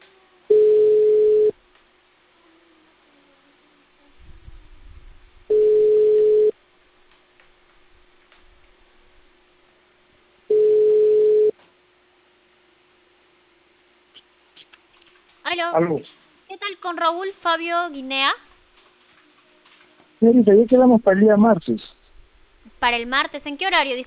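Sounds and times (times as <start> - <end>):
faint hum: 0.0 - 24.0
ringback tones on a telephone line while a call is placed: 0.5 - 1.6, 5.5 - 6.5, 10.5 - 11.5
brief low rumble: 4.2 - 5.5
speech: 15.6 - 18.5, 20.2 - 22.0, 22.8 - 24.0.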